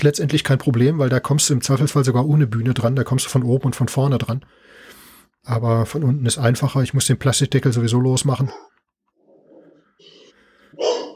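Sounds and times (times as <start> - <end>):
speech: 0.0 - 4.8, 5.4 - 8.8
large dog barking deeply: 8.5 - 8.8, 10.7 - 11.1.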